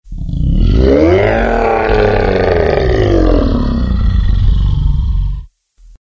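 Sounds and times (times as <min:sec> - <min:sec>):
monster sound: 0:00.1 - 0:05.5.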